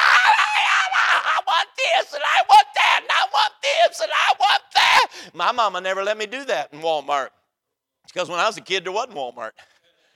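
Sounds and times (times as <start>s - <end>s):
voice imitating a screaming, whining child in a shopping cart: 0.0s - 5.1s
speech: 5.5s - 7.4s, 8.1s - 9.7s.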